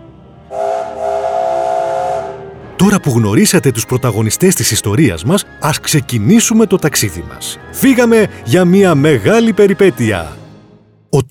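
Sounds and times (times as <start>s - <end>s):
steam locomotive whistle: 0.5s - 2.6s
speech: 2.8s - 10.4s.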